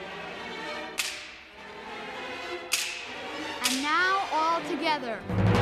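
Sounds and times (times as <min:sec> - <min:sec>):
orchestral whip cracks: 0:01.0 - 0:01.5, 0:02.7 - 0:03.8
speech: 0:04.6 - 0:05.5.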